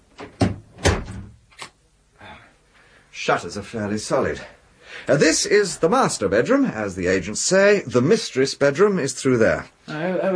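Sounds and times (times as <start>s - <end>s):
door being pushed shut: 0.2s - 1.4s
speech: 3.2s - 10.3s.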